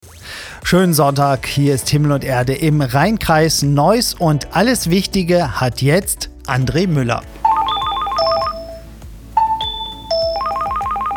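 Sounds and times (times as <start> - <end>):
speech: 0.7 - 7.4
telephone ringing with a warbling electronic tone: 7.4 - 11.1.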